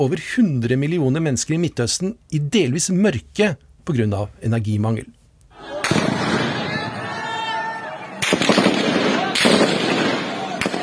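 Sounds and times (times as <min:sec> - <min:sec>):
speech: 0:00.0 - 0:05.7
gunfire from soldiers shooting at demonstrators in Aden, southern Yemen: 0:05.8 - 0:06.8, 0:08.2 - 0:10.8.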